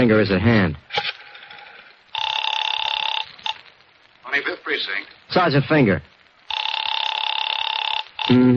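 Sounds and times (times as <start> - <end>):
speech: 0.0 - 0.8, 4.7 - 6.1
telephone ringing with electric bell trill: 2.1 - 3.6, 6.5 - 8.4.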